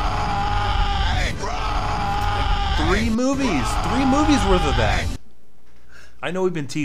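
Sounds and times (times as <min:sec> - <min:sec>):
person yelling an imitated scream of a name: 0:00.0 - 0:05.2
speech: 0:02.8 - 0:05.2, 0:06.2 - 0:06.8.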